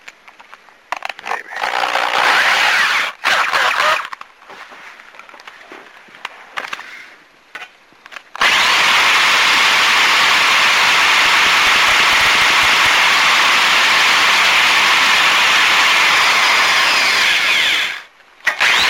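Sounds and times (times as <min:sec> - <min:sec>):
power drill drilling out a hole: 0:01.6 - 0:04.0, 0:08.4 - 0:18.8.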